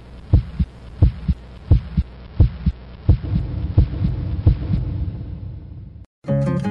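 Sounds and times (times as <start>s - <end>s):
droning hum: 0.0s - 6.0s
heart beating: 0.3s - 5.7s
music: 6.2s - 6.6s.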